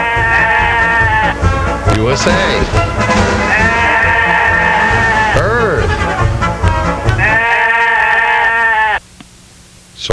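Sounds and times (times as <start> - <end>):
sheep bleat sound effect: 0.0 - 1.5, 3.4 - 6.3, 7.0 - 9.0
speech: 2.0 - 3.2.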